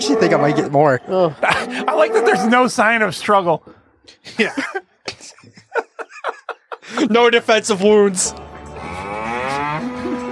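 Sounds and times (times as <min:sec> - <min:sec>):
cow mooing: 0:00.0 - 0:00.8, 0:01.6 - 0:02.8, 0:08.8 - 0:10.3
speech: 0:00.0 - 0:04.8, 0:06.9 - 0:08.5
laughter: 0:00.9 - 0:02.1, 0:04.2 - 0:07.5.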